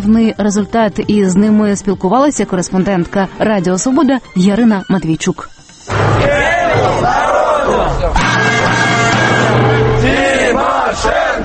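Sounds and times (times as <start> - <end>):
speech: 0.0 - 5.6, 9.5 - 11.4
crowd of protesters chanting a slogan outdoors: 5.9 - 11.4.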